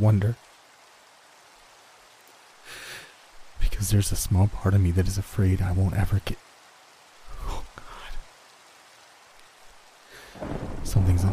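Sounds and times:
speech: 0.0 - 0.5, 3.8 - 6.4, 10.9 - 11.3
steady rain hiss: 0.0 - 11.3
deep thunder roll: 10.4 - 11.3.

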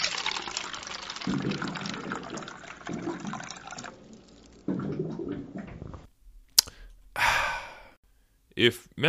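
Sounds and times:
water cooler filling and gurgling: 0.0 - 6.1
speech: 1.2 - 3.6, 8.6 - 9.0.

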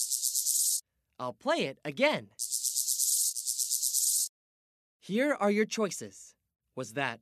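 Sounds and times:
grasshopper stridulating by rubbing legs against wings: 0.0 - 0.8, 2.3 - 4.3
speech: 1.2 - 2.5, 5.1 - 6.2, 6.8 - 7.2.

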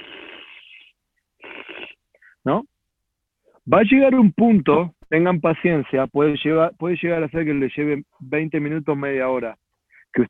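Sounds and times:
gas hissing through a regulator from a gas tank into a fermenter: 0.0 - 1.9
speech: 2.4 - 2.7, 3.7 - 10.2.

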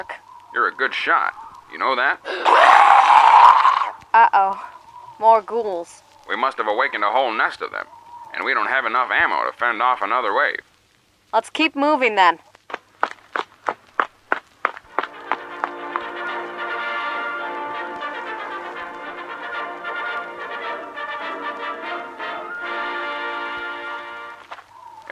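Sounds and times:
speech: 0.0 - 3.2, 4.1 - 10.7, 11.3 - 12.5
footsteps crunching uphill: 12.4 - 19.9, 23.5 - 25.1.

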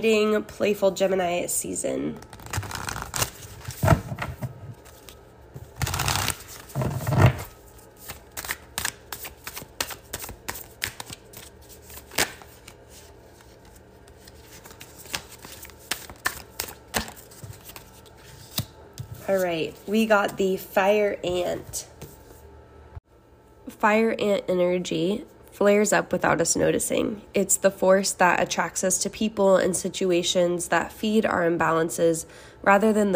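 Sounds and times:
speech: 0.0 - 2.4, 19.9 - 21.9, 23.8 - 33.1
deck of cards being shuffled: 2.2 - 19.9.

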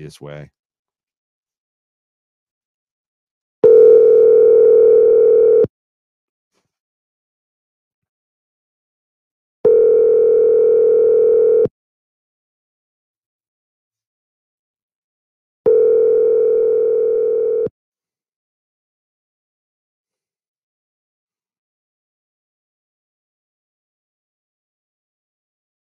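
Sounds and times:
speech: 0.0 - 0.6
phone ringback tone for an unanswered outgoing call: 3.6 - 5.7, 9.7 - 11.7, 15.7 - 17.7.

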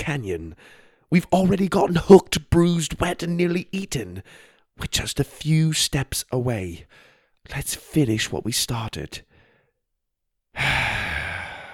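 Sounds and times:
speech: 0.0 - 9.3
person taking a deep breath: 0.6 - 1.1, 4.3 - 4.7, 6.9 - 7.4, 9.3 - 9.8, 10.6 - 11.7.

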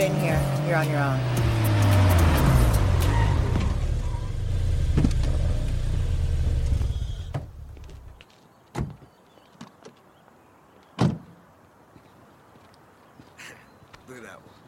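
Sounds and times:
speech: 0.0 - 1.5
car engine rumbling and revving hard: 0.0 - 8.1.

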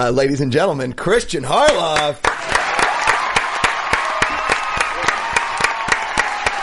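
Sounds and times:
speech: 0.0 - 2.5
room full of people applauding: 1.9 - 6.6.

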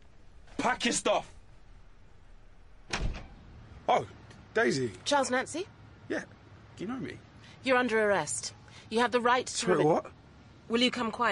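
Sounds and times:
speech: 0.7 - 1.4, 3.9 - 11.2
front door of a house opening: 2.6 - 3.5
heavy clunk and rattle of a front door latch: 2.8 - 3.4.

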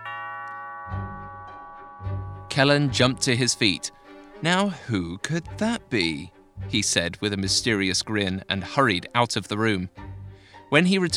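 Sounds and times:
two-tone doorbell chiming: 0.0 - 6.3
speech: 2.6 - 10.0, 10.7 - 11.1.

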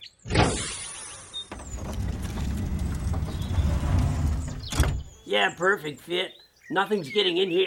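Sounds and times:
vehicle cargo doors opening and sliding: 1.5 - 5.2
speech: 5.3 - 7.6.

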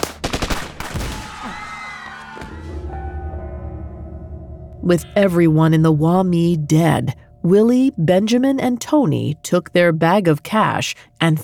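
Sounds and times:
rapid burst of loud gunshots: 0.0 - 1.3
voices faintly crying out: 1.2 - 2.7
sustained ringing noisy wash: 2.8 - 10.0
speech: 4.8 - 11.4.

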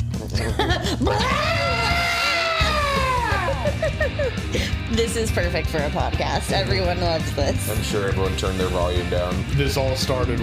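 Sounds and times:
laughter: 0.1 - 5.0
speech: 0.4 - 1.4, 4.3 - 10.4
goat screaming: 1.1 - 3.6.

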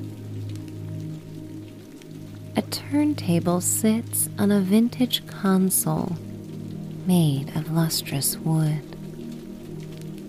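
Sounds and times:
steady rain: 0.0 - 10.2
speech: 2.6 - 6.3, 7.1 - 8.9.

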